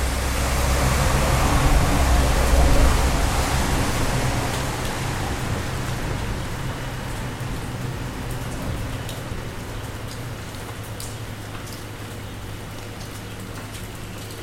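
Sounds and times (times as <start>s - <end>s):
rain falling as a dense steady hiss: 0.0s - 12.7s
faint sharp ticks of raindrops: 5.8s - 14.4s.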